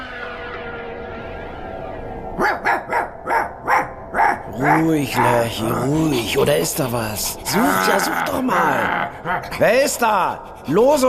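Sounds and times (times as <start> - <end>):
German shepherd dog barking: 2.4 - 5.4
speech: 4.6 - 11.0.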